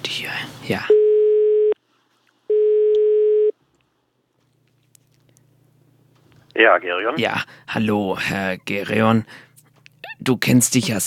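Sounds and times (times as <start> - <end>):
speech: 0.6 - 1.0, 6.6 - 9.5, 10.2 - 11.0
electronic telephone ringing tones: 2.5 - 3.5.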